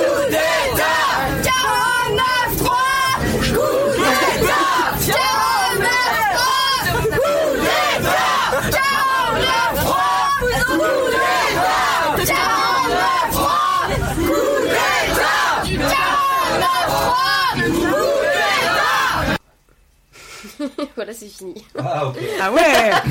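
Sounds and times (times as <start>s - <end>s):
large protest crowd chanting slogans in unison against the labour law: 0.0s - 19.4s
protesters shouting: 0.0s - 19.4s
laughter: 3.2s - 9.6s, 21.6s - 23.0s
speech: 21.2s - 23.0s.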